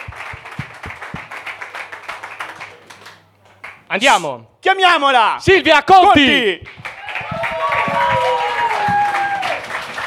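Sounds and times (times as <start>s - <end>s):
audience applause at a comedy night: 0.0s - 3.8s, 6.7s - 10.0s
speech: 3.9s - 6.8s.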